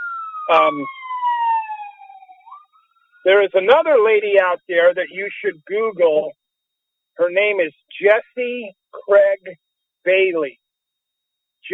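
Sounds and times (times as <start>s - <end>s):
police car siren passing by: 0.0s - 3.4s
speech: 0.5s - 1.0s, 3.2s - 6.4s, 7.2s - 10.6s.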